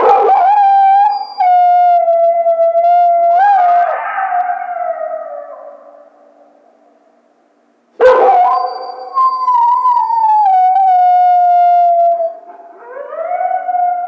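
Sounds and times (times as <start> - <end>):
coyote long steady harmonic howls: 0.0 - 6.1, 8.1 - 14.0.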